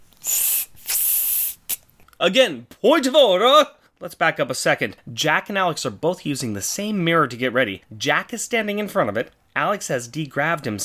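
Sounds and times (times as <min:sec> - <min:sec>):
aerosol spray hissing from a can nozzle: 0:00.2 - 0:01.8
speech: 0:02.2 - 0:10.8.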